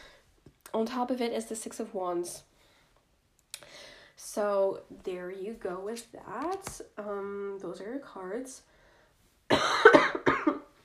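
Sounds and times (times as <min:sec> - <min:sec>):
speech: 0:00.8 - 0:02.5, 0:04.4 - 0:08.7
harsh chesty coughing: 0:09.5 - 0:10.8.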